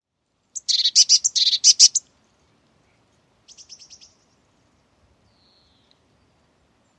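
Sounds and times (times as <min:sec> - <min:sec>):
Eurasian blue tit churring scold: 0:00.6 - 0:02.0.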